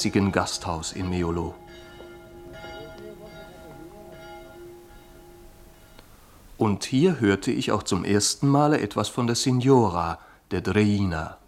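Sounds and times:
speech: 0:00.0 - 0:01.9, 0:06.6 - 0:11.4
small bell ringing on the piazza of an Italian village: 0:00.0 - 0:06.5
constant hiss: 0:00.0 - 0:11.4.

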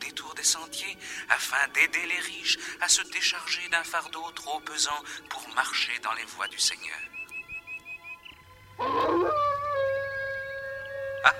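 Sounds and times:
speech: 0:00.4 - 0:07.2, 0:08.8 - 0:09.6
wolf howling: 0:08.8 - 0:11.3.

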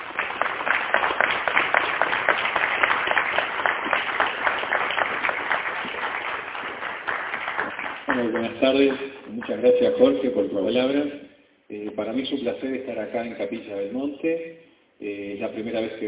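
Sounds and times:
audience applause at an international UFO congress in Argentina: 0:00.0 - 0:09.6
speech: 0:08.4 - 0:16.0.

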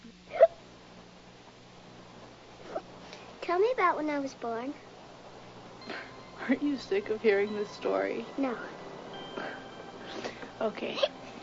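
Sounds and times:
faint steady low hum: 0:00.0 - 0:11.4
tipsy woman hiccuping on a swing after drinking wine: 0:00.3 - 0:00.6
speech: 0:03.4 - 0:04.9, 0:05.9 - 0:08.8, 0:10.6 - 0:11.1.

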